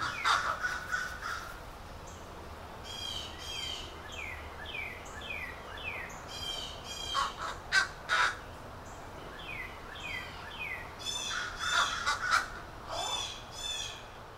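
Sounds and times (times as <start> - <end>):
crows cawing in a neighborhood: 0.0 - 1.6, 7.0 - 8.4, 11.0 - 14.0
blue jays calling in a neighborhood: 0.0 - 1.7, 2.8 - 8.6, 9.4 - 14.1
steady outdoor hiss: 0.0 - 14.3.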